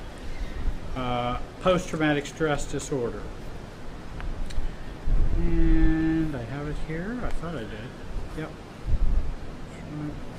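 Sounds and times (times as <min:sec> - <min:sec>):
speech: 0:01.0 - 0:03.4, 0:05.4 - 0:08.6
low rumbling wind buffeting the microphone outdoors: 0:04.4 - 0:06.3, 0:08.2 - 0:09.4.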